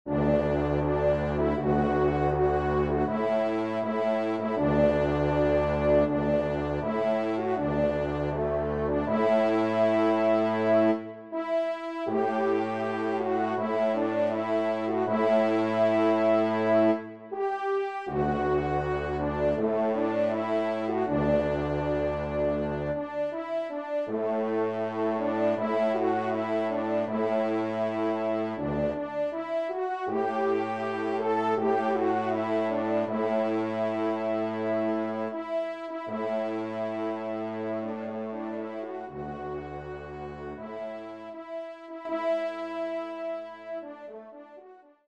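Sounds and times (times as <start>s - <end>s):
hymn music: 0.0s - 45.0s.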